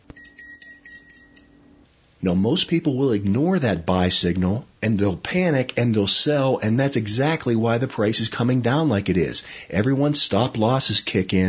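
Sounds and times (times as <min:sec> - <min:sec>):
bright bell ringing with a trilling rattle: 0:00.0 - 0:01.9
speech: 0:02.2 - 0:11.4.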